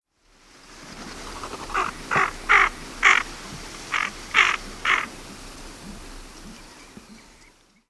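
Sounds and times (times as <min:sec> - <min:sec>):
tufted duck calling: 0:01.5 - 0:05.4.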